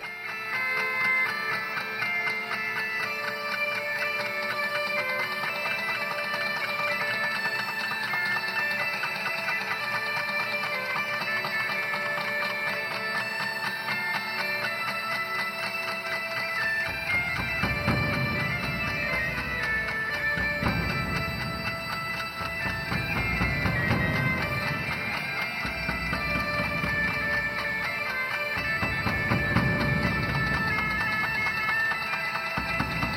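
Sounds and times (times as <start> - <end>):
minimalist trance-like quartet music of bagpipes and drums: 0.0 - 33.1.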